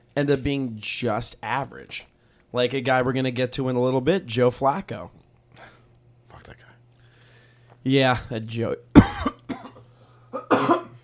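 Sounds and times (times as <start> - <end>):
faint low hum: 0.0 - 11.0
speech: 0.2 - 5.7, 7.8 - 9.3
person coughing: 9.0 - 11.0.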